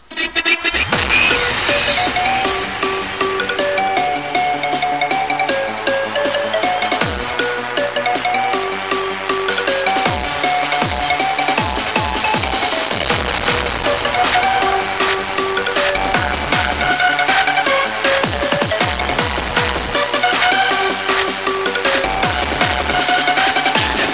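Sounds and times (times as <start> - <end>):
bass: 0.0 - 24.1.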